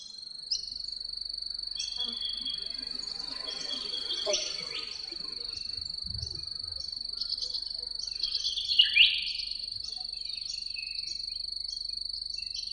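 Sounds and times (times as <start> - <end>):
lakeside soundscape: 0.5 - 9.9.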